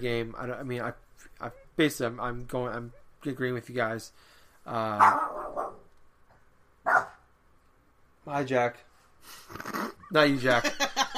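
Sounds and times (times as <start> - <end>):
speech: 0.0 - 5.4, 8.2 - 11.1
dog barking: 5.0 - 5.9, 6.8 - 7.2.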